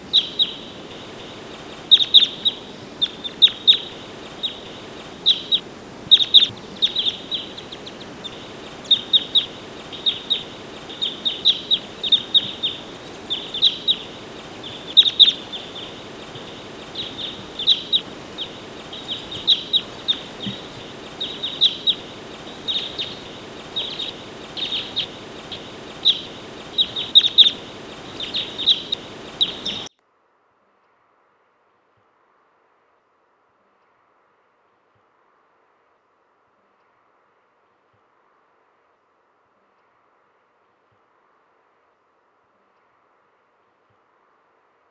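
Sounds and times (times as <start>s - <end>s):
Type 2 crossbill contact call: 0.0s - 29.9s.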